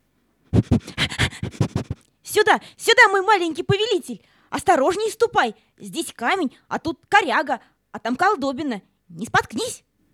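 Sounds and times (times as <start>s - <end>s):
dog sniffing eagerly along a path in the dark: 0.5s - 2.0s
speech: 2.4s - 9.9s.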